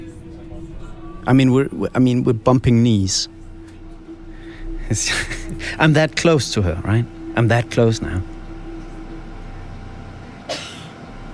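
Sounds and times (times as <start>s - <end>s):
city bus engine rumble and droning hum: 0.0s - 11.3s
speech: 1.2s - 3.4s, 4.9s - 8.3s
woman coughing: 10.5s - 11.0s.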